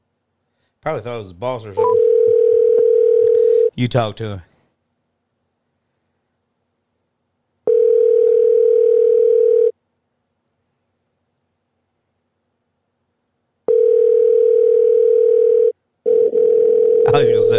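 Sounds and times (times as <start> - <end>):
speech: 0.8 - 2.2, 3.8 - 4.5
ringback tone of an unanswered outgoing phone call: 1.8 - 3.7, 7.7 - 9.7, 13.7 - 17.5.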